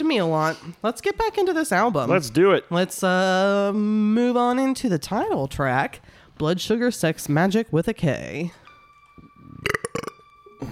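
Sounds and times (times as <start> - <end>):
speech: 0.1 - 8.6
burp-like throat gurgles after drinking: 9.5 - 10.2.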